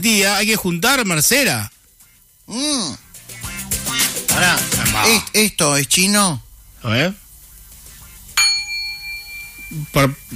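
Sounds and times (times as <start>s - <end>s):
speech: 0.0s - 1.8s, 2.5s - 3.0s, 4.4s - 7.2s, 9.7s - 10.3s
gong struck and ringing: 8.4s - 10.3s.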